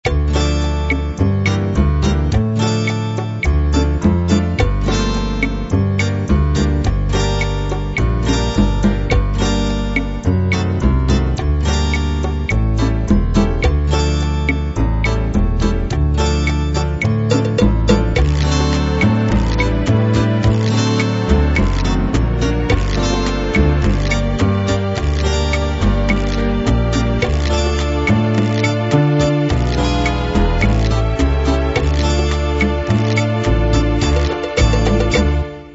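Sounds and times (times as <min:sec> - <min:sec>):
bolero music: 0:00.0 - 0:35.7.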